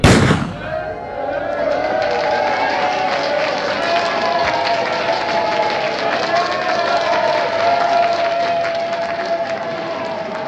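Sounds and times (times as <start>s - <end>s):
starting pistol fired at the start of a race: 0.0s - 0.8s
crowd and movement noise: 0.0s - 10.4s
voices: 0.0s - 10.4s.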